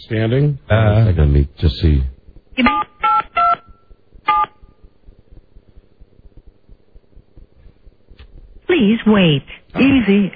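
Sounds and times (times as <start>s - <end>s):
speech: 0.0s - 2.9s, 8.8s - 10.3s
short bright telephone keypad tones: 2.6s - 4.8s.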